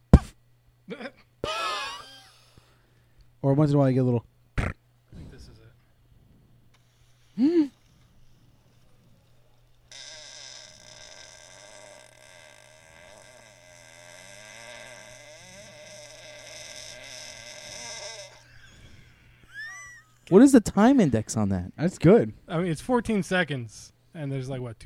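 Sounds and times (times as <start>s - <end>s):
speech: 3.4s - 4.3s, 20.3s - 24.8s
long drawn-out fart: 4.6s - 4.8s, 9.9s - 20.2s.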